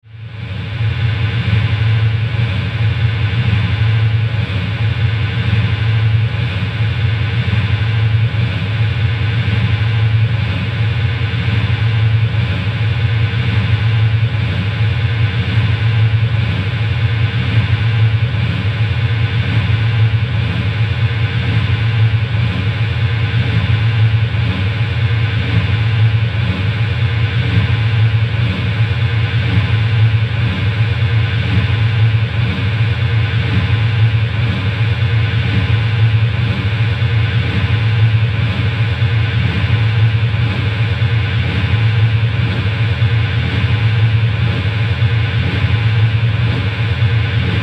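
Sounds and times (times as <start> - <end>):
industrial generator pulsing drone: 0.0 - 47.6.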